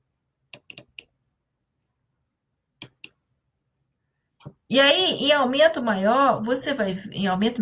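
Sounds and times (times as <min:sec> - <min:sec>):
computer mouse clicks selecting skin tissue slides: 0:00.5 - 0:01.1, 0:02.8 - 0:03.2
speech: 0:04.7 - 0:07.6.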